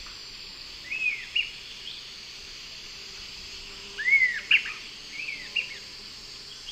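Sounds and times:
high insect drone: 0:00.0 - 0:06.7
Sirystes sibilator whistling calls: 0:04.0 - 0:05.7.

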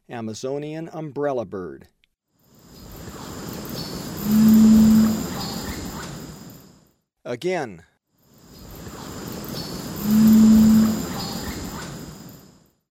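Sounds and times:
Amazonian Umbrellabird calling in the Eastern Lowlands of South America: 0:03.7 - 0:06.1, 0:09.1 - 0:12.0.

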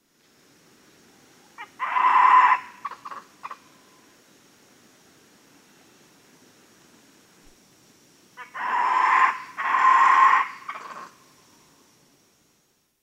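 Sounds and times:
faint high whine: 0:00.0 - 0:13.0
white-throated capuchin monkey making long loud raspy screeching calls: 0:01.6 - 0:03.6, 0:08.4 - 0:11.2.

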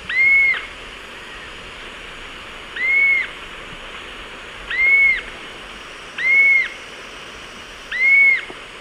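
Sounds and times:
pair of bluish-fronted jacamars calling in eastern lowlands of South America: 0:00.0 - 0:01.6, 0:02.7 - 0:03.4, 0:04.7 - 0:05.3, 0:06.2 - 0:06.8, 0:07.9 - 0:08.5
steady background hiss: 0:00.0 - 0:08.7.

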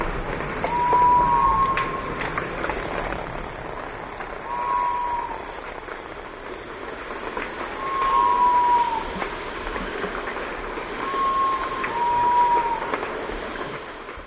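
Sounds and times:
loud steady hiss: 0:00.0 - 0:14.2
sapphire quail-dove two-part whistled hoot: 0:00.6 - 0:02.4, 0:04.4 - 0:05.8, 0:07.7 - 0:10.2, 0:10.8 - 0:13.8.

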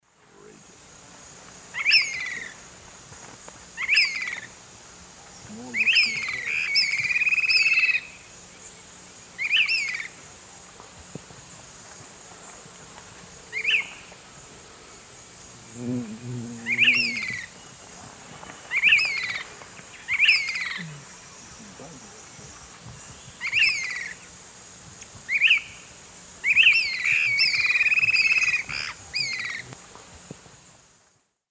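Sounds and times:
Myiarchus swainsoni calling in South American Eastern Lowlands: 0:01.7 - 0:02.6, 0:03.8 - 0:04.5, 0:05.4 - 0:08.8, 0:09.4 - 0:10.2, 0:13.5 - 0:14.2, 0:15.5 - 0:24.3, 0:25.3 - 0:29.8.

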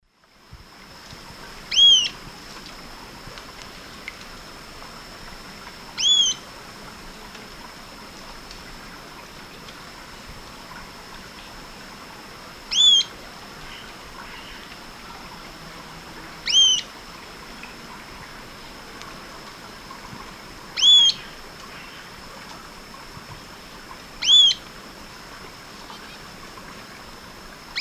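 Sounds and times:
Ochthornis littoralis calls: 0:01.7 - 0:02.2, 0:06.0 - 0:06.4, 0:12.7 - 0:14.8, 0:16.4 - 0:16.9, 0:20.8 - 0:22.1, 0:24.2 - 0:24.6.

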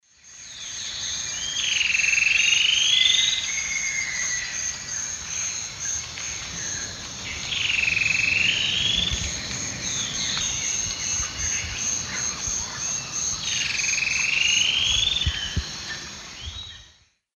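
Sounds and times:
Deconychura stictolaema song in South American Eastern Lowlands: 0:00.1 - 0:17.2.

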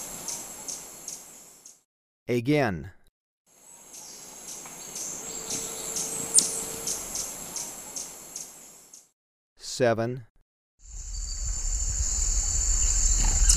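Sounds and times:
steady high insect drone in Ecuador: 0:00.0 - 0:01.8, 0:03.5 - 0:09.0, 0:10.8 - 0:13.5
speech: 0:02.3 - 0:03.0, 0:09.8 - 0:10.3
White-tipped sicklebill giving sharp very high chip notes in Ecuador: 0:04.8 - 0:08.5.

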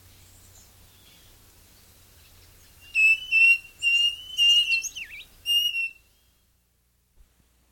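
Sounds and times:
striped cuckoo whistling in South America: 0:02.8 - 0:06.1.

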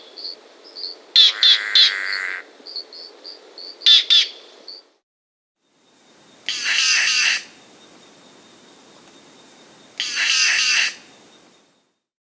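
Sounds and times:
Green jay chattering calls in the Andes of South America: 0:01.2 - 0:02.4, 0:06.4 - 0:11.5.

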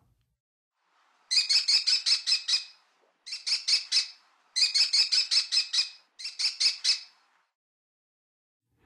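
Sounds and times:
American Kestrel calling in the western USA: 0:01.3 - 0:07.2.

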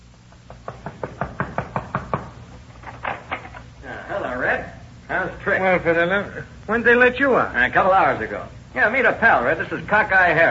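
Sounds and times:
firm knocks on a door: 0:00.6 - 0:02.4
speech: 0:05.4 - 0:10.4.

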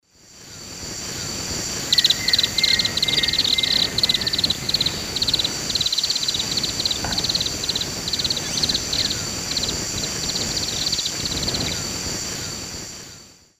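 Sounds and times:
Atticora fasciata calls: 0:01.9 - 0:12.6.

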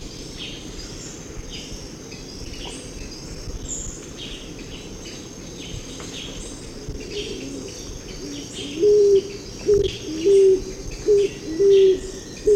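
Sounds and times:
high insect whine: 0:00.0 - 0:12.5
scaled pigeon cooing in Ecuador: 0:07.1 - 0:12.5.

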